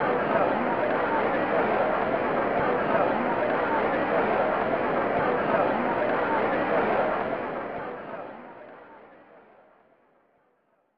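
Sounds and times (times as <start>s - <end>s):
SNES crowd murmur: 0.0s - 8.7s.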